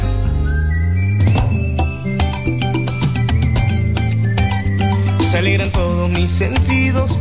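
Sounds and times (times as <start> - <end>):
loud instrumental backing track with steady rhythmic beat: 0.0 - 7.2
person whistling a tune: 0.2 - 7.0
speech: 5.4 - 7.2.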